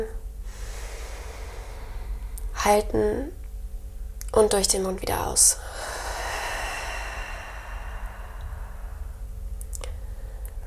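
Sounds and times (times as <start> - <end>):
speech: 0.0 - 0.2, 2.6 - 3.4, 4.3 - 5.9
deep inhale through the nose during a guided breathing exercise: 0.4 - 2.5, 5.6 - 10.5.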